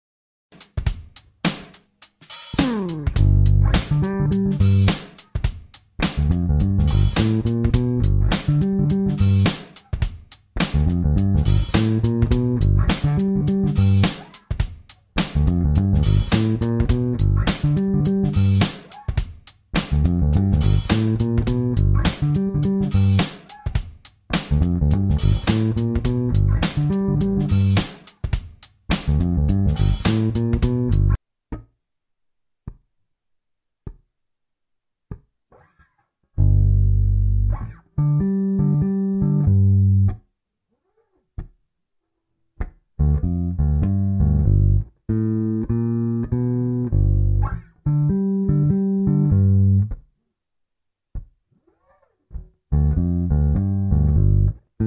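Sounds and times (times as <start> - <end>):
G7 sixteenth-note swing bass groove: 2.5 - 31.2, 36.4 - 40.2, 43.0 - 50.0, 52.3 - 54.8.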